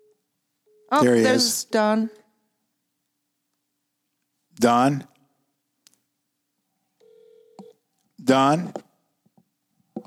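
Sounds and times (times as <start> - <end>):
electronic telephone ringing tone on a call-in line: 0.0 - 1.6, 7.0 - 7.8
speech: 0.9 - 2.2, 4.6 - 5.1, 8.2 - 8.8.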